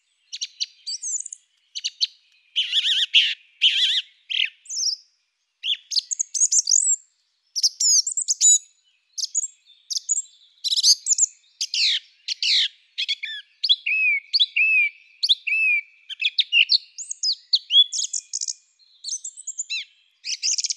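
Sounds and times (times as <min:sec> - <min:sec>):
song thrush in full song: 0:00.0 - 0:20.7.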